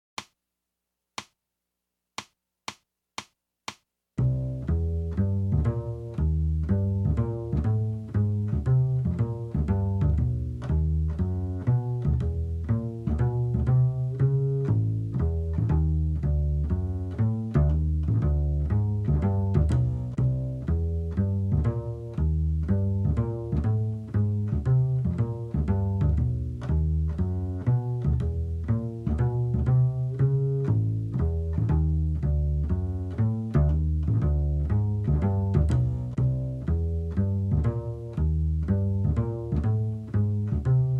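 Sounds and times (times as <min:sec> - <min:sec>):
bass: 0:04.2 - 0:40.9.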